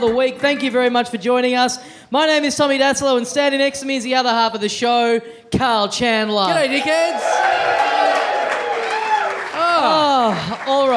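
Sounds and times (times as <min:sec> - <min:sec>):
speech: 0:00.0 - 0:08.2, 0:09.8 - 0:10.9
audience member yelling at a live show: 0:06.5 - 0:07.5
audience cheering: 0:06.5 - 0:10.9.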